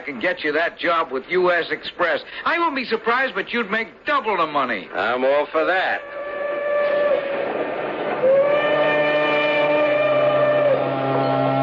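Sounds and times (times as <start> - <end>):
speech: 0.0 - 6.2
steam train whistle pulling into station: 6.0 - 11.6.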